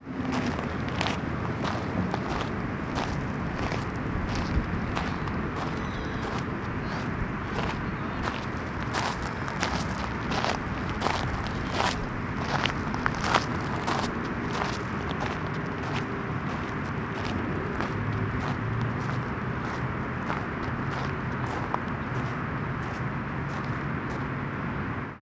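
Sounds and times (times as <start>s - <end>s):
footsteps on gravel in Houston: 0.1s - 24.4s.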